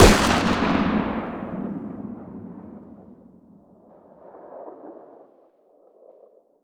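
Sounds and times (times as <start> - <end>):
distant 50 AE pistol firing outdoors: 0.0 - 2.9.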